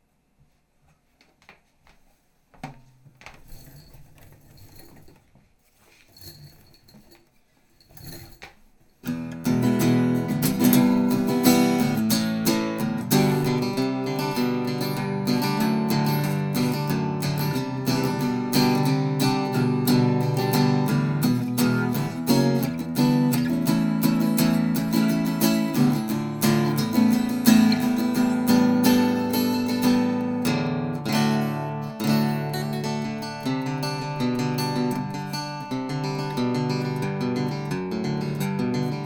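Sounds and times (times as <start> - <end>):
guitar test through electret microphone: 9.1 - 39.0.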